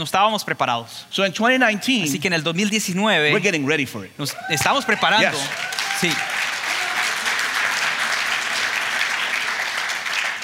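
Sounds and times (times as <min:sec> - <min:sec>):
speech: 0:00.0 - 0:06.4
crowd applauding: 0:04.4 - 0:10.4.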